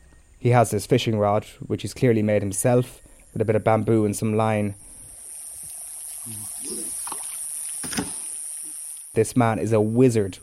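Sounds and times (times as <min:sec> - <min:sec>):
faint steady hiss: 0:00.0 - 0:10.4
speech: 0:00.4 - 0:04.8, 0:06.3 - 0:07.0, 0:09.2 - 0:10.4
oars dipping and splashing on a river: 0:06.0 - 0:08.8.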